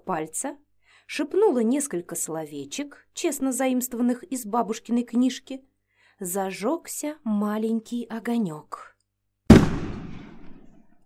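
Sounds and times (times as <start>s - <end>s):
speech: 0.1s - 8.9s
explosion: 9.5s - 10.8s.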